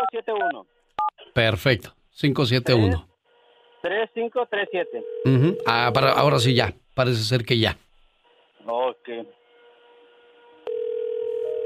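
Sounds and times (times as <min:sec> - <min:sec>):
speech: 0:00.1 - 0:03.1, 0:03.8 - 0:07.8, 0:08.6 - 0:09.4
telephone ringing tone on an outgoing call: 0:04.7 - 0:05.8, 0:10.6 - 0:11.6.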